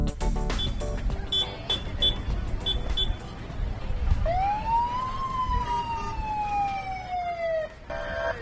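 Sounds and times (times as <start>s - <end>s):
busy outdoor crowd noise at a touch-a-truck event in Fairfax County: 0.2s - 8.3s
emergency vehicle sirens wailing at a touch-a-truck event at Chantilly library: 4.2s - 8.3s.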